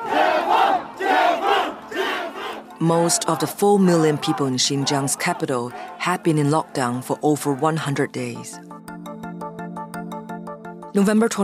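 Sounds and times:
large crowd of protesters chanting in unison in the streets: 0.0 - 8.4
speech: 2.8 - 8.9, 10.9 - 11.4.

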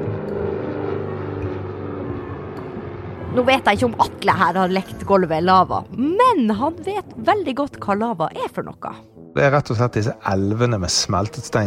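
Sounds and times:
small propeller plane engine droning: 0.0 - 7.6
speech: 3.4 - 11.6.

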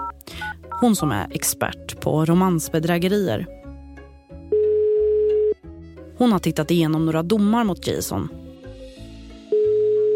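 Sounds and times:
telephone ringback tone while calling: 0.0 - 0.9, 4.5 - 5.6, 9.5 - 10.1
low musical background: 0.0 - 10.1
speech: 0.8 - 3.6, 6.2 - 8.4.

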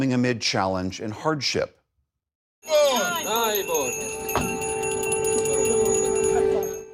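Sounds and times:
speech: 0.0 - 1.8, 2.6 - 4.2
church bells ringing: 2.6 - 6.9.

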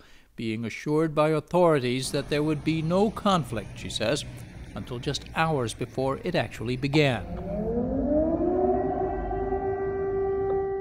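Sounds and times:
speech: 0.4 - 7.6
low rumble: 1.9 - 7.7
air raid siren wailing: 2.0 - 10.8.

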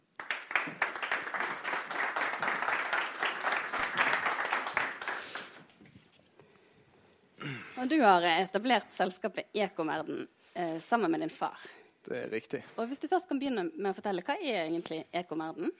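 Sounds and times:
crowd applauding panel speaker: 0.0 - 5.7
speech: 7.8 - 15.7.

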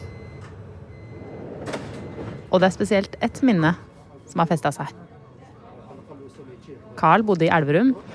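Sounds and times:
metro train sliding doors closing: 0.4 - 2.5
speech: 2.5 - 5.1, 7.0 - 8.1.

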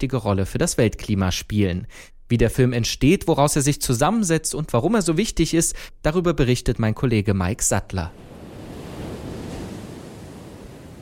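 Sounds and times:
speech: 0.0 - 8.3
rough sea surf roaring with crashing waves: 8.1 - 11.0.

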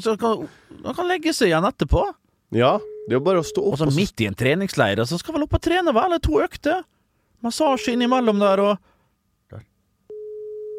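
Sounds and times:
speech: 0.0 - 8.9, 9.5 - 9.7
telephone ringback tone: 2.8 - 3.8, 10.1 - 10.7.

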